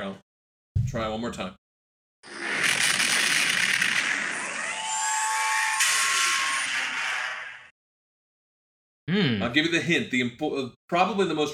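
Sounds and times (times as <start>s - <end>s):
speech: 0.9s - 1.6s, 9.1s - 11.5s
sci-fi spaceship hyperdrive engine whine and roar: 2.6s - 7.1s.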